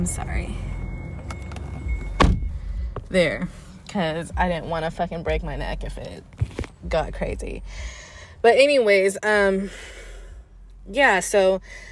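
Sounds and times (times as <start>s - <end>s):
speech: 0.0s - 0.7s, 3.1s - 10.0s, 10.9s - 11.9s
low rumble inside a vehicle: 0.0s - 11.9s
car door or window opening with a mechanical thunk: 1.3s - 3.1s.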